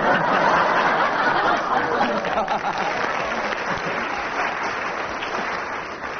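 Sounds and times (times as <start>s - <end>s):
studio audience laughing: 0.0s - 4.8s
studio audience applause: 0.0s - 6.1s.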